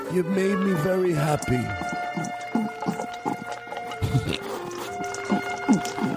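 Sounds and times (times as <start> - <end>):
speech: 0.1 - 2.4
dog eating food from a bowl: 1.2 - 6.1.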